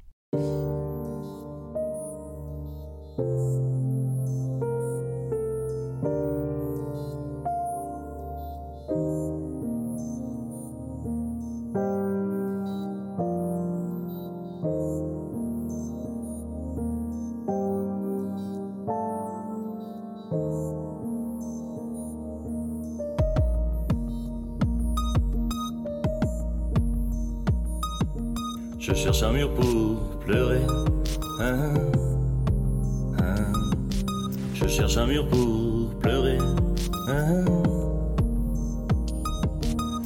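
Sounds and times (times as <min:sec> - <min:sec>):
piano playing a flowing instrumental introduction: 0:00.3 - 0:40.0
percussion: 0:23.2 - 0:40.0
speech: 0:29.0 - 0:31.9, 0:34.7 - 0:36.5.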